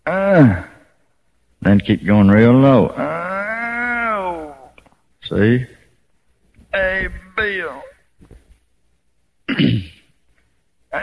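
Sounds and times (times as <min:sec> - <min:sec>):
speech: 0:00.1 - 0:00.7, 0:01.6 - 0:03.1, 0:05.3 - 0:05.8
rough raspy throat clearing: 0:09.5 - 0:10.1.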